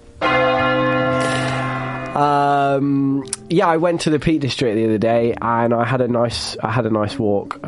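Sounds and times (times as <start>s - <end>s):
large bell ringing: 0.1s - 4.4s
speech: 2.2s - 7.6s.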